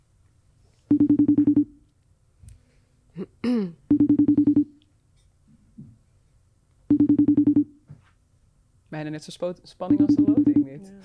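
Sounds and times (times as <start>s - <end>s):
phone call ringing tone: 0.9s - 1.8s, 3.9s - 4.8s, 6.9s - 7.8s, 9.9s - 10.8s
speech: 9.0s - 11.0s.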